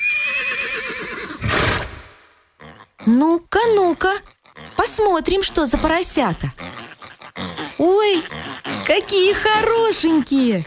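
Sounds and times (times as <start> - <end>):
horse whinnying while led to its stall: 0.0 - 2.1
horse snorting: 0.4 - 10.6
speech: 3.1 - 6.7, 7.8 - 10.6.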